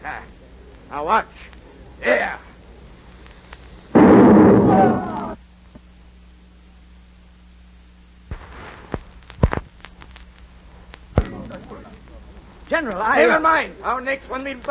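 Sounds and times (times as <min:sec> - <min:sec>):
speech: 0:00.9 - 0:02.4, 0:12.8 - 0:14.6
cannon firing after its fuse is lit with a cigarette: 0:04.0 - 0:05.4
scattered sharp pops and thuds: 0:04.0 - 0:05.4, 0:08.3 - 0:11.8.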